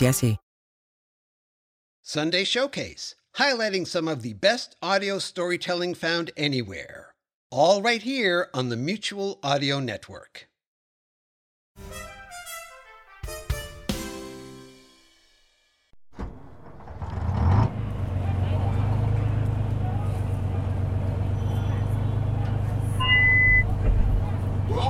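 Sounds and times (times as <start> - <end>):
speech: 0.0 - 0.4, 2.0 - 10.5
large amphibious tourist bus engine idling: 16.2 - 24.8.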